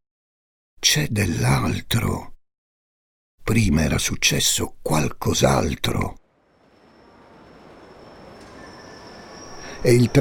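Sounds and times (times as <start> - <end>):
speech: 0.9 - 2.3, 3.5 - 6.2, 9.8 - 10.2
metro train rumbling along the rails: 6.2 - 10.2
metro train wheels squealing on rails: 6.2 - 10.2.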